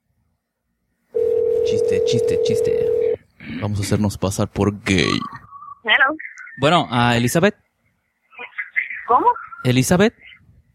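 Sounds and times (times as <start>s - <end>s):
telephone dial tone while placing a call: 1.2s - 3.2s
speech: 1.7s - 3.0s, 3.6s - 7.6s, 9.1s - 10.3s.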